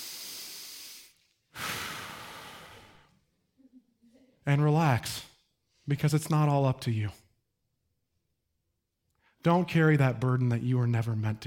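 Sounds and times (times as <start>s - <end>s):
slow deep breaths with a sigh-like exhale: 0.0s - 3.3s
speech: 4.5s - 5.3s, 5.9s - 7.2s, 9.4s - 11.4s.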